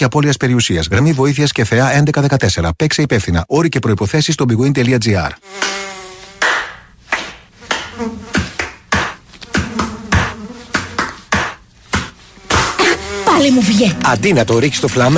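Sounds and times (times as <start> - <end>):
speech: 0.0 - 5.9, 13.4 - 15.1
mosquito buzzing: 5.4 - 6.8, 7.6 - 11.6, 12.2 - 14.4
sharp irregular taps and thumps: 7.1 - 12.8.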